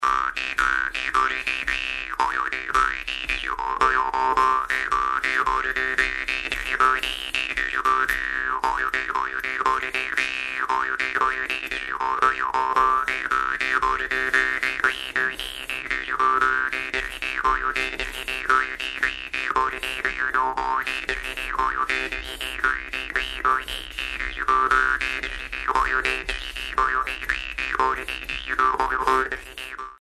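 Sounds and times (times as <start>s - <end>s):
jew's harp solo: 0.0s - 29.9s.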